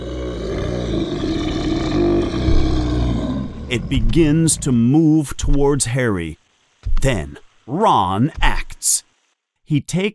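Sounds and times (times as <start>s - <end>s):
troll roaring: 0.0s - 4.8s
speech: 3.7s - 6.4s, 7.0s - 9.1s, 9.7s - 10.1s.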